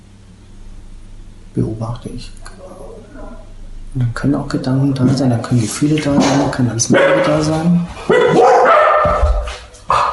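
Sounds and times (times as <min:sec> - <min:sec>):
speech: 0:01.5 - 0:08.1
dog barking: 0:06.9 - 0:07.5, 0:08.1 - 0:10.1.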